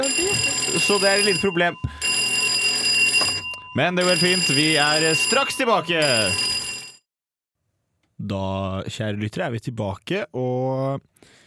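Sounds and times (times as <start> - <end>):
fire alarm blaring in a studio: 0.0 - 7.0
speech: 0.7 - 2.0, 3.8 - 6.5, 8.3 - 11.4.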